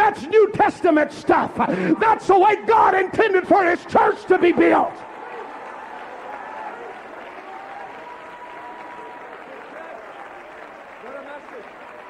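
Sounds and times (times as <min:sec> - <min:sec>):
preacher urging on crowd: 0:00.0 - 0:05.0
speech: 0:00.6 - 0:05.1
large crowd clapping hands steadily: 0:03.6 - 0:12.0.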